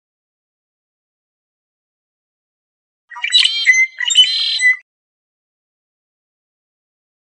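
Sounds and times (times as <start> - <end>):
red-winged blackbird song: 3.1 - 4.8.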